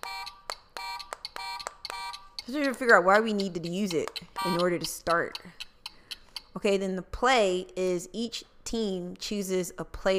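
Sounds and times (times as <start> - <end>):
harsh electronic board game buzzer blaring: 0.0 - 2.5, 4.3 - 5.0
speech: 2.5 - 5.7, 6.6 - 10.1.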